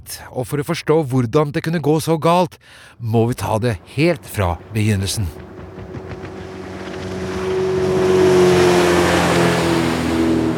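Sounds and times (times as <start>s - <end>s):
speech: 0.1s - 5.5s
racing boat engine running at speed: 3.4s - 10.5s.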